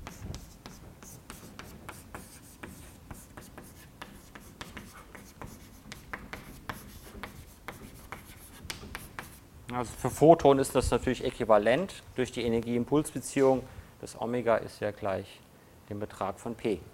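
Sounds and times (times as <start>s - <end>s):
writing on a board during a physics lecture: 0.0s - 9.4s
speech: 9.8s - 16.9s.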